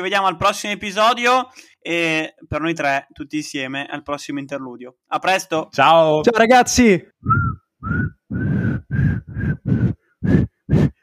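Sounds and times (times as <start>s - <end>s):
speech: 0.0s - 8.2s
person whistling short breathy notes: 7.2s - 11.0s.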